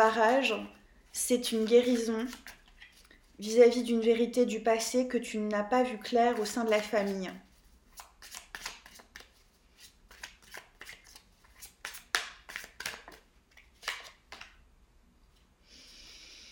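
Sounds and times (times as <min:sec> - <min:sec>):
speech: 0:00.0 - 0:02.6, 0:03.4 - 0:07.4
tarot cards shuffled and drawn: 0:00.0 - 0:03.4, 0:05.9 - 0:14.6.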